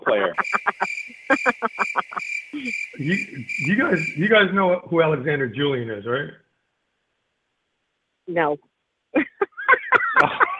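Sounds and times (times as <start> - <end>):
laughter: 0.0 - 4.4, 9.2 - 10.5
speech: 0.1 - 0.9, 3.0 - 6.4, 8.4 - 8.7
continuous buzzing tone: 0.4 - 4.4
crickets chirping in a high-pitched trill: 0.4 - 4.6.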